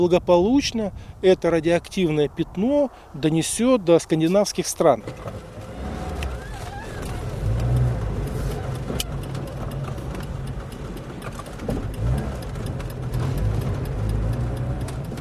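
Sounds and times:
road noise: 0:00.0 - 0:15.1
old nearly broken-down car engine rumbling while driving: 0:04.2 - 0:15.1.

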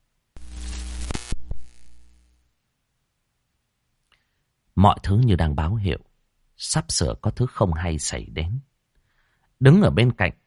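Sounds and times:
low electrical hum: 0:00.0 - 0:10.0
electrical short crackling as lights flicker in a bar: 0:00.4 - 0:02.4
speech: 0:04.8 - 0:08.7, 0:09.6 - 0:10.4.

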